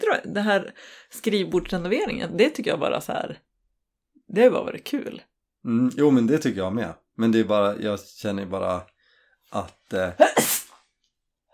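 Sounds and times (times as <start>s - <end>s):
speech: 0.1s - 3.5s, 4.3s - 8.9s, 9.5s - 10.6s
sneeze: 10.2s - 10.8s.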